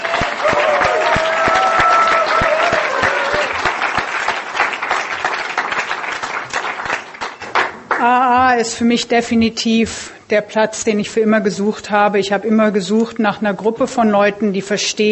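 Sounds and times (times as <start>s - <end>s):
crowd clapping: 0.0s - 8.2s
speech: 8.6s - 15.1s.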